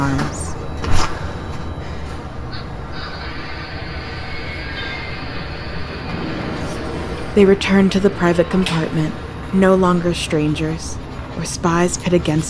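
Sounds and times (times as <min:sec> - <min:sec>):
speech: 0:00.0 - 0:00.4, 0:07.4 - 0:12.4
faint metallic squeals: 0:00.7 - 0:06.9
train rumbling as it halts violently: 0:01.3 - 0:12.4.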